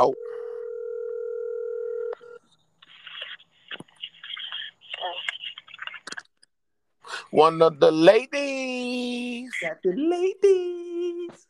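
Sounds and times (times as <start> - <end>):
speech: 0.0 - 0.2, 7.3 - 8.8, 9.5 - 11.4
house telephone dial tone: 0.2 - 2.4.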